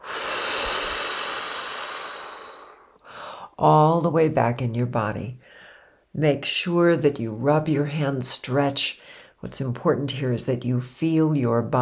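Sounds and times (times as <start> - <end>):
long forceful breath blown out during a guided breathing exercise: 0.0 - 3.5
speech: 3.6 - 5.4, 6.1 - 11.8.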